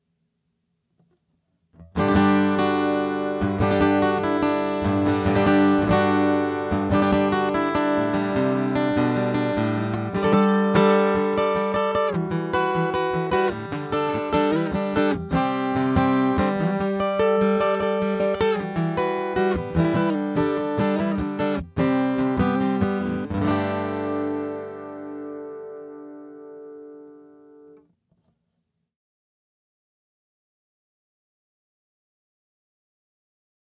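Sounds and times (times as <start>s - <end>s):
Yamaha FGX5 acoustic guitar: 1.8s - 27.8s.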